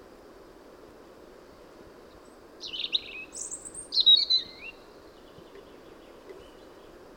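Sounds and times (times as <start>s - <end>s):
Erithacus rubecula European robin singing: 2.1s - 7.0s.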